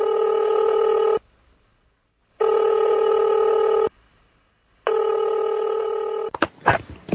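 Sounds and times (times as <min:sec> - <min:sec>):
telephone ringing on an outgoing call: 0:00.0 - 0:01.2, 0:02.4 - 0:03.9, 0:04.9 - 0:06.3.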